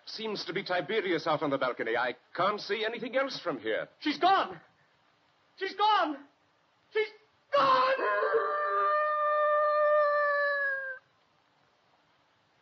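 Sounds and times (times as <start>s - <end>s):
speech: 0.1s - 4.7s, 5.6s - 6.3s, 6.9s - 8.4s
dog howling: 7.6s - 11.0s.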